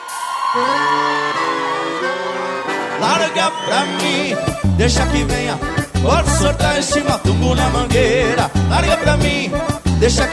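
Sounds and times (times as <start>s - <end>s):
crowd of gauchos whooping and shouting: 0.0s - 4.6s
speech: 0.6s - 1.0s, 3.0s - 10.3s.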